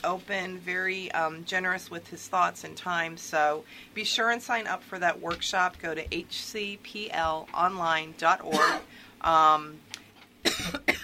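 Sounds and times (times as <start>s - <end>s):
speech: 0.0s - 10.9s
person coughing: 8.5s - 8.9s, 10.5s - 11.0s.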